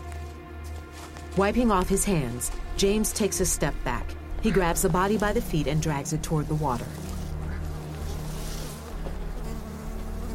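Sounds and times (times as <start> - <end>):
flies buzzing above the ground by a cove's water: 0.0 - 10.3
speech: 1.4 - 7.1.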